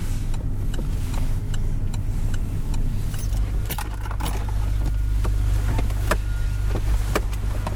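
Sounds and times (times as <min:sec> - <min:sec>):
car engine rumble as the car slows and pulls over to park in Dunkirk: 0:00.0 - 0:07.7.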